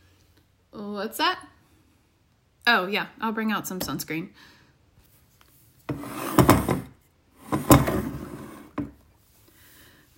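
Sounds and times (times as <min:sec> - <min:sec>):
speech: 0:01.0 - 0:01.5, 0:02.7 - 0:04.6
wooden door scraping open: 0:05.9 - 0:08.9.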